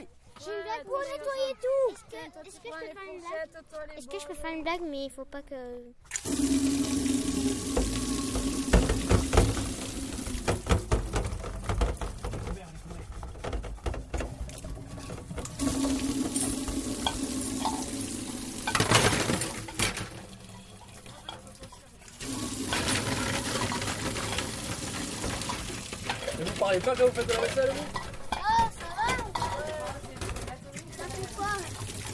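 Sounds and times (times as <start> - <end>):
speech: 0.4 - 6.6, 26.8 - 28.0
running tap water splashing while washing dishes: 6.1 - 32.1
dishes clinking while being washed: 7.6 - 31.1.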